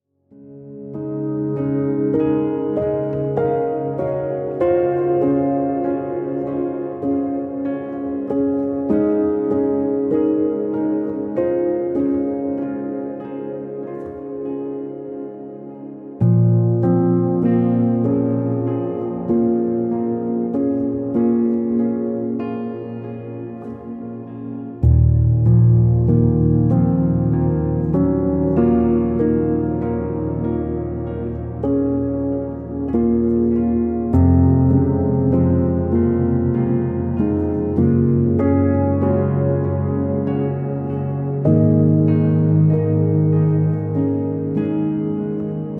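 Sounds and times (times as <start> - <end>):
deep meditation piano music: 0.0 - 45.7.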